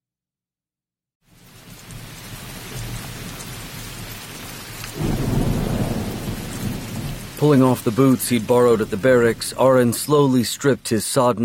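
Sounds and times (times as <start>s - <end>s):
steady downpour of rain: 1.2s - 11.4s
deep rumbling thunder: 2.0s - 10.6s
speech: 7.4s - 11.4s.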